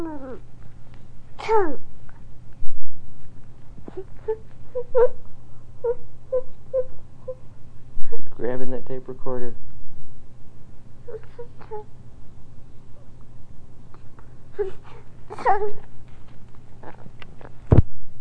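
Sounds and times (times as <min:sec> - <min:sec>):
fussy baby whimpering and crying late at night: 0:00.0 - 0:00.4, 0:01.4 - 0:01.8, 0:03.8 - 0:05.2, 0:05.8 - 0:07.4, 0:11.0 - 0:11.9, 0:14.5 - 0:15.9
low steady hum: 0:00.0 - 0:18.1
speech: 0:01.5 - 0:01.8, 0:04.0 - 0:05.2, 0:09.0 - 0:09.7.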